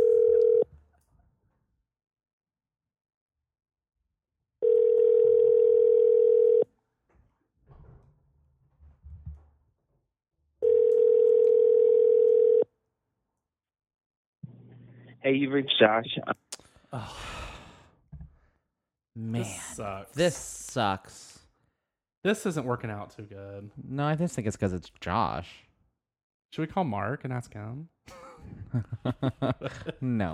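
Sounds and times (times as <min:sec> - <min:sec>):
steady electronic phone ringback tone: 0:00.0 - 0:00.7, 0:04.6 - 0:06.7, 0:10.6 - 0:12.7
speech: 0:15.2 - 0:17.3, 0:19.2 - 0:21.3, 0:22.2 - 0:25.7, 0:26.5 - 0:30.3
laughter: 0:28.1 - 0:30.3.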